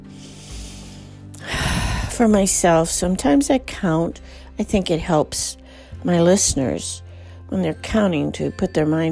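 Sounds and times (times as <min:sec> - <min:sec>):
person lying down inhaling through the nose during a breathing meditation: 0:00.0 - 0:02.2
speech: 0:02.2 - 0:09.1.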